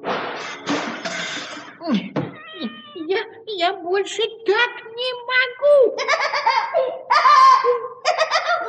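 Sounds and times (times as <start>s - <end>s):
wall clock crashing to the floor: 0.0s - 1.8s
cat giving loud yowling meows: 2.4s - 3.0s
speech: 3.9s - 4.8s
laughter: 6.0s - 8.6s.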